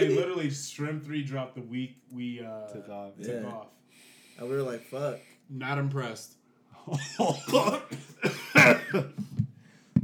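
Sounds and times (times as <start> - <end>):
speech: 0.0 - 9.3
person coughing: 7.0 - 9.2.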